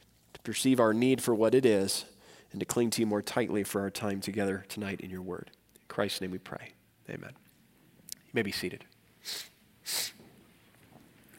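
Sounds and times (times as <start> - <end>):
speech: 0.4 - 7.4, 8.3 - 10.2
breathy sniff through the nose: 9.2 - 10.4.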